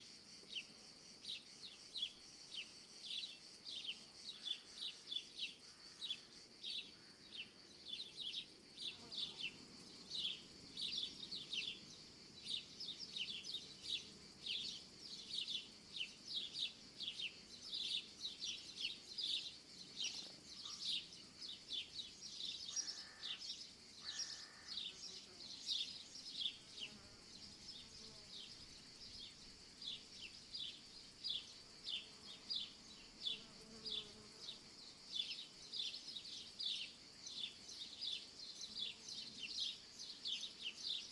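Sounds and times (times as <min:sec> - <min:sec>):
cicadas in summer fields: 0:00.0 - 0:41.0
insects in summer fields: 0:00.0 - 0:41.0
little birds in summer fields in the morning: 0:00.4 - 0:41.0
owl in summer fields: 0:22.7 - 0:23.4, 0:24.0 - 0:24.8.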